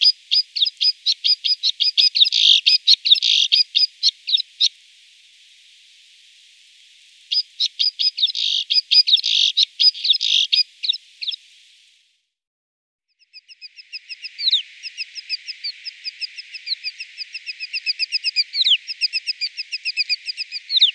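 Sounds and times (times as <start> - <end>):
white-winged snowfinch chirping and twittering: 0.0 - 4.7, 7.3 - 11.5, 13.2 - 20.9.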